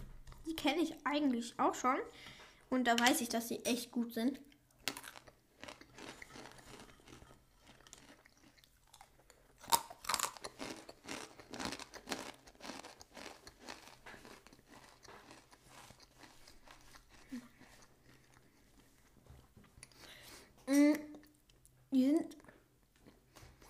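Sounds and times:
speech: 0.6 - 4.5
crunching and chewing peanuts: 4.5 - 20.0.

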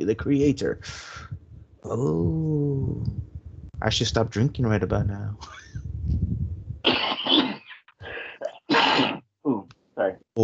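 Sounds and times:
speech: 0.0 - 3.2, 3.8 - 6.2
person sneezing: 6.9 - 9.2.

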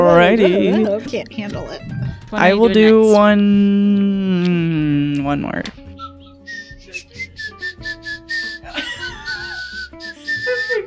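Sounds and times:
speech: 0.0 - 5.8
laughter: 0.1 - 1.8, 8.6 - 10.8
person whistling a short wavering tune while smiling: 5.9 - 10.8.

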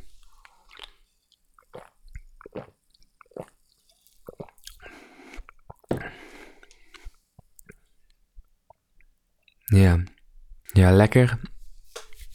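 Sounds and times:
person sipping and swallowing an energy drink: 0.0 - 7.9
speech: 9.8 - 10.1, 10.7 - 11.5.

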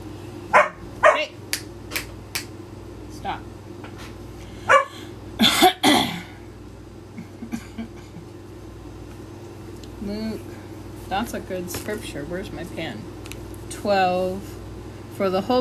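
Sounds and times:
low steady hum: 0.0 - 15.5
dog barking: 0.5 - 1.4, 4.7 - 5.0
speech: 11.2 - 13.1, 13.7 - 14.6, 15.2 - 15.5.

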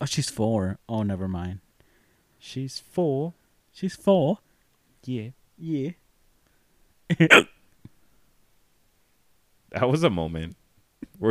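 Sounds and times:
speech: 0.0 - 1.6, 2.4 - 6.0, 7.1 - 7.6, 9.7 - 10.6
voiced hiccups: 7.1 - 7.6.

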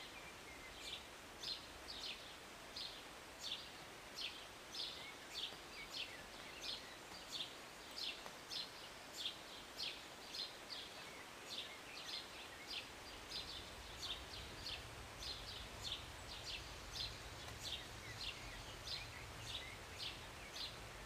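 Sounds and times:
bird chirping: 0.0 - 21.0
light morning rain hissing in the city: 0.0 - 21.0.

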